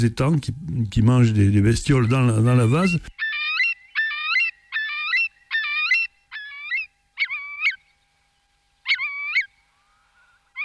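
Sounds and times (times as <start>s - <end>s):
speech: 0.0s - 3.2s
Eurasian curlew calling: 1.8s - 8.1s, 8.8s - 10.6s.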